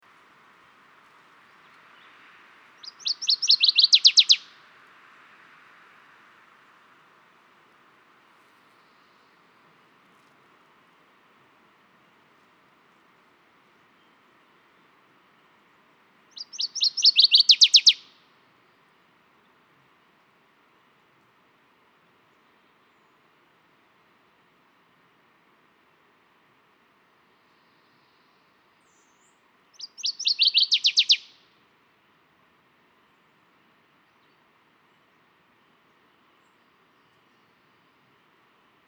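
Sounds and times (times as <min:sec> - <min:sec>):
Northern Waterthrush Parkesia noveboracensis warbler: 0:02.8 - 0:04.5, 0:16.3 - 0:18.0, 0:28.9 - 0:31.4.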